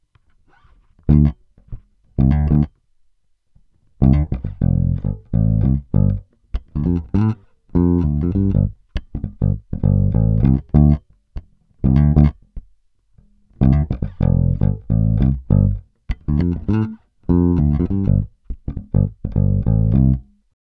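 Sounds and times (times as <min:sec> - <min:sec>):
fingerstyle guitar: 0:00.4 - 0:02.8, 0:03.9 - 0:20.4.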